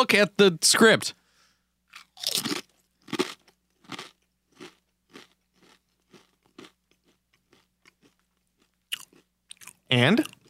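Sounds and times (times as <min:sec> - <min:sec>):
speech: 0:00.0 - 0:01.2, 0:09.9 - 0:10.4
person crunching a slightly spicy chip: 0:01.9 - 0:10.4.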